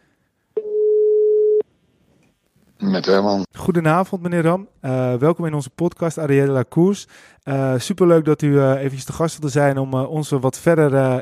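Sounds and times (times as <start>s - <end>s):
telephone ringback tone while calling someone: 0.6s - 1.6s
speech: 2.8s - 11.1s.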